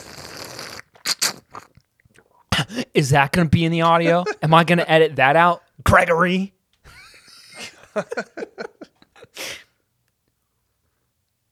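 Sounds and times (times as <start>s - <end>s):
person slurping coffee: 0.0s - 2.3s
speech: 3.0s - 6.6s, 8.0s - 8.4s
laughter: 3.8s - 4.7s, 6.9s - 9.3s.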